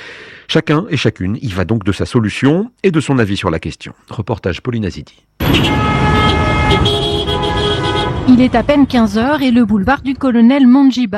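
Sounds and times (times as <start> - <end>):
speech: 0.5 - 7.0, 8.2 - 11.1
car horn toots in congested city traffic: 5.4 - 8.4
congested car and truck traffic rumbling on a main city boulevard in Kinshasa: 5.4 - 9.7.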